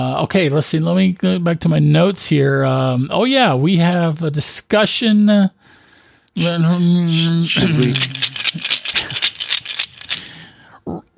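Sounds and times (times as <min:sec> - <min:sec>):
speech: 0:00.0 - 0:05.6, 0:06.4 - 0:08.8
brief sustained voiced tone: 0:06.3 - 0:09.2
dice shaken in a cup and rolled across a surface: 0:07.1 - 0:10.5.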